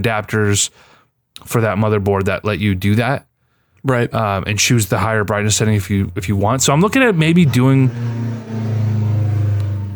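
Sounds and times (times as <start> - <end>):
speech: 0.0 - 9.0
loud car engine droning while driving past: 6.2 - 9.9.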